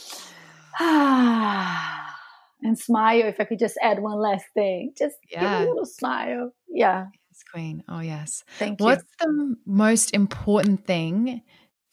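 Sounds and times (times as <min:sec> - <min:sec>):
deep breath in and out with sighing exhale: 0:00.0 - 0:02.6
speech: 0:00.8 - 0:01.9, 0:02.6 - 0:11.9.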